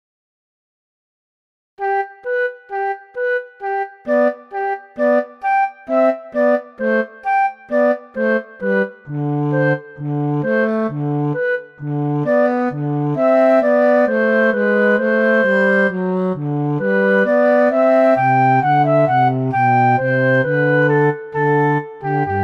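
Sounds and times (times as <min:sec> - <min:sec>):
flute: 0:01.8 - 0:22.4
cello: 0:07.7 - 0:22.4.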